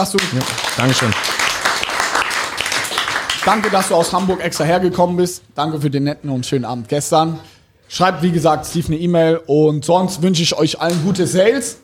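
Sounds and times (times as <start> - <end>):
speech: 0.0 - 1.3, 3.4 - 11.8
audience applause: 0.0 - 4.5.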